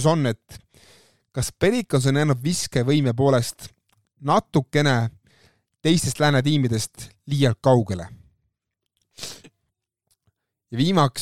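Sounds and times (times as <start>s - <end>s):
speech: 0.0s - 5.2s, 5.8s - 8.2s, 9.2s - 9.4s, 10.7s - 11.2s
wet snot sniffle: 9.1s - 9.5s.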